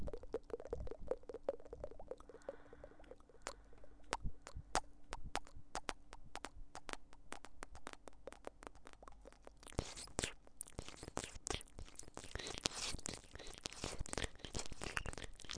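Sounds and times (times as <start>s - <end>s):
quiet low hum: 0.0s - 15.5s
mouth sounds of pecking kisses at the ear: 3.5s - 15.5s.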